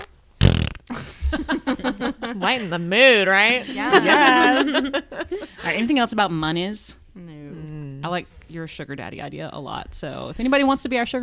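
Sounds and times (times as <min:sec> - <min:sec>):
voice imitating a fart with a buzzy raspberry: 0:00.0 - 0:01.0
laughter: 0:00.9 - 0:05.9
speech: 0:00.9 - 0:07.0, 0:08.0 - 0:11.2.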